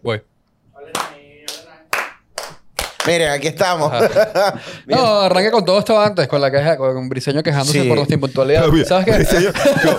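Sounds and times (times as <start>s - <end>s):
speech: 0.0s - 0.3s, 3.1s - 9.9s
hand claps to sync recording: 0.9s - 3.3s
laughter: 3.8s - 5.4s, 9.0s - 9.9s.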